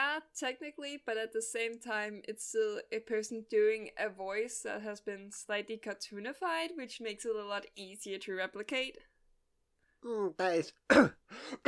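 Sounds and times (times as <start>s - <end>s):
speech: 0.3s - 9.1s, 10.0s - 11.6s
person coughing from something caught in throat: 10.9s - 11.6s.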